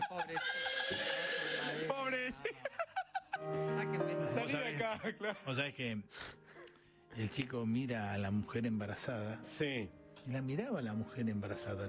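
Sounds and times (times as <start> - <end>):
laughter: 0.0 - 3.6, 4.4 - 5.6
speech: 0.1 - 1.0, 4.9 - 6.4, 7.2 - 11.8
person vocally imitating a horse whinnying: 0.4 - 1.9.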